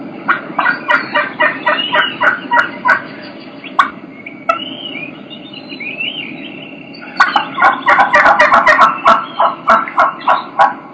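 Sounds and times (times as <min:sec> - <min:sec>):
two turkey hens yelping: 0:00.2 - 0:05.1, 0:07.0 - 0:10.9.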